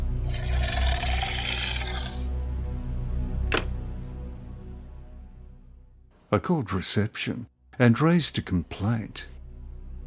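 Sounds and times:
low rumbling growl over a phone call: 0.2 - 2.3
raspy heavy breathing over a phone call: 0.2 - 2.3
sharp click: 3.4 - 3.8
speech: 6.3 - 9.3.

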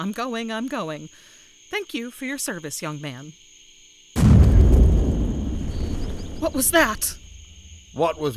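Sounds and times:
speech: 0.0 - 3.4, 6.4 - 7.2, 7.9 - 8.3
explosion: 4.2 - 7.7
heavy sustained low rumble: 4.2 - 7.9.

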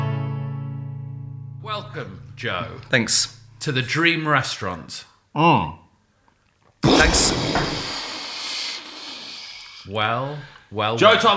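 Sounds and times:
speech: 1.6 - 5.8, 6.9 - 7.9, 9.9 - 11.3
fizzing hiss sound effect of a genie emerging: 6.8 - 9.9.

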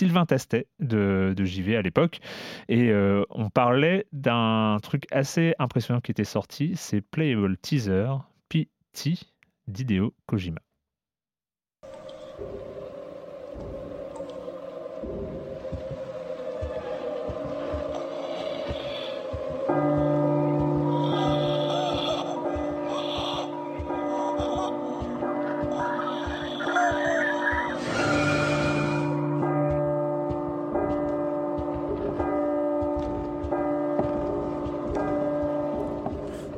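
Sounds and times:
speech: 0.0 - 10.7
bells tolling in a video game excerpt: 14.0 - 36.5.

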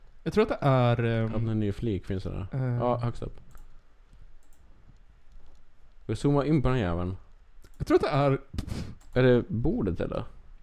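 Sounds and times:
soft hum: 0.0 - 10.6
speech: 0.2 - 3.5, 6.1 - 7.2, 7.8 - 10.4
computer mouse clicks: 3.4 - 5.7, 7.6 - 7.9, 9.0 - 9.2.

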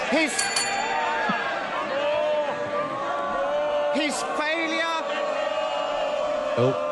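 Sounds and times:
MPs shouting and jeering in a parliamentary chamber: 0.0 - 6.9.

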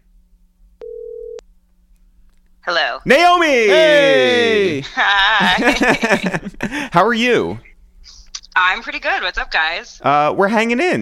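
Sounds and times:
low constant hum: 0.0 - 11.0
steady electronic phone line tone: 0.8 - 1.4
speech: 2.6 - 11.0
laughter: 3.7 - 7.0.

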